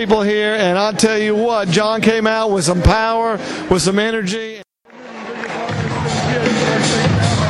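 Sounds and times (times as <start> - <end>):
speech: 0.0 - 4.6
large concert audience cheering and shouting in a big space: 4.9 - 7.4.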